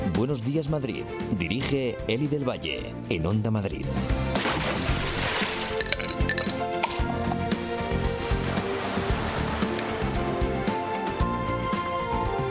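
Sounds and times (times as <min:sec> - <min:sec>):
speech: 0:00.2 - 0:04.7
water splashing in a pool: 0:04.3 - 0:12.4.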